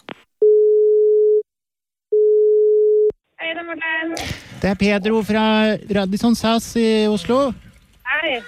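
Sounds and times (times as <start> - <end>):
outgoing call ringing tone from a hotel in Oslo: 0.4 - 1.4, 2.1 - 3.1
speech: 3.7 - 7.6, 8.2 - 8.4.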